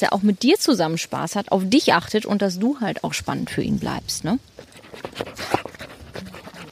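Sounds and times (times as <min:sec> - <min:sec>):
speech: 0:00.0 - 0:05.7
dog panting: 0:04.6 - 0:06.7.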